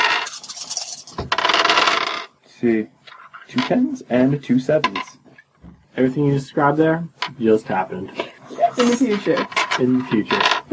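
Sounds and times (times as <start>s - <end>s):
dice clattering as they are rolled for a tabletop game: 0.0s - 2.3s, 9.3s - 10.7s
speech: 2.6s - 5.2s, 6.0s - 8.2s, 8.8s - 10.7s.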